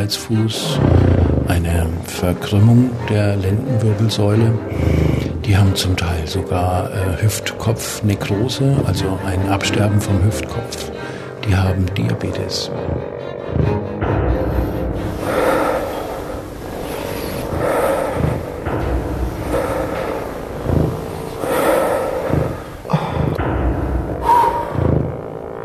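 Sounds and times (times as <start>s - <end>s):
speech: 0.0s - 13.8s
child breathing forcefully while exercising in a gym: 12.7s - 25.4s.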